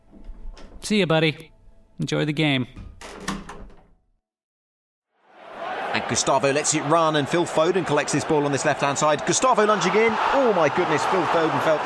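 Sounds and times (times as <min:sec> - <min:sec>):
speech: 0:00.8 - 0:03.2, 0:06.1 - 0:11.8
door banging shut with a solid thud: 0:02.7 - 0:04.0.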